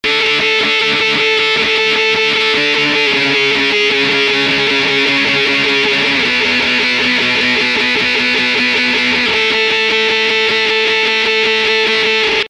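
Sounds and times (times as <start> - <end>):
guitar with chorus effect: 0.0 - 12.4.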